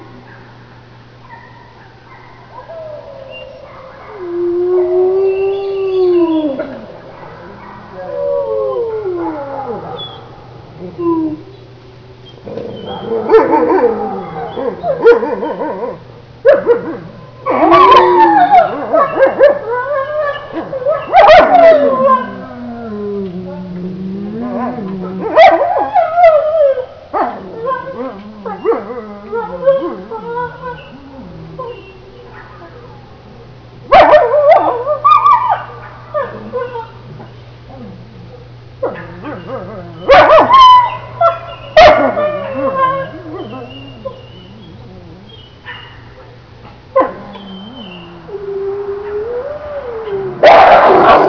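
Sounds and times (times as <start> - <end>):
wolf howling: 2.5 - 11.5, 12.4 - 32.9, 33.9 - 45.7, 47.0 - 51.2.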